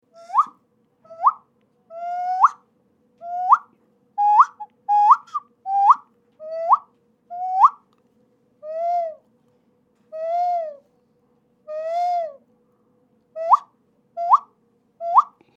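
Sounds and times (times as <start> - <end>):
Amazonian nasal whistle: 0.2 - 1.5, 2.1 - 2.6, 3.2 - 7.8, 8.6 - 9.2, 10.2 - 10.8, 11.7 - 12.4, 13.4 - 15.4.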